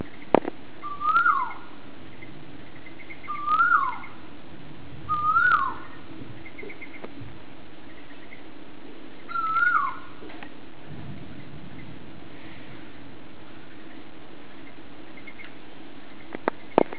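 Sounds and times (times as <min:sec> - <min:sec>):
low hum: 0:00.0 - 0:16.9
unidentified animal whistling in Singapore: 0:00.8 - 0:01.7, 0:03.2 - 0:04.2, 0:05.1 - 0:07.0, 0:09.3 - 0:10.0.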